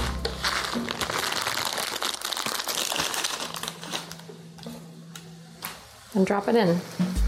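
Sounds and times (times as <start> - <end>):
ramen wrapper tearing open: 0.0 - 4.3
plastic ramen packaging crinkling and rustling: 0.0 - 4.5
speech: 6.2 - 7.1.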